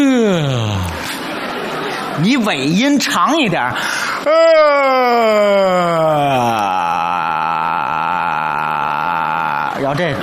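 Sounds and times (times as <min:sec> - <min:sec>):
long drawn-out yawn: 0:00.0 - 0:01.0, 0:04.2 - 0:09.8
speech: 0:02.2 - 0:06.8.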